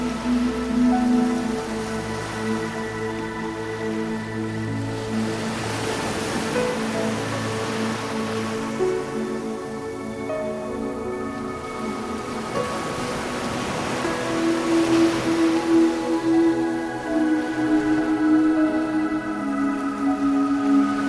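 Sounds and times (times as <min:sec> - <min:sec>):
ocean waves: 0:00.0 - 0:21.0
soft synth pads holding long overlapping chords: 0:00.0 - 0:21.0.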